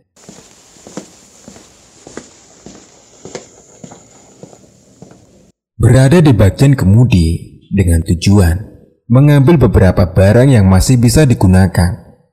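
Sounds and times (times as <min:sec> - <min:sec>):
heavy footsteps thudding: 0:00.0 - 0:05.6
constant faint hiss: 0:00.2 - 0:05.5
speech: 0:05.8 - 0:12.0.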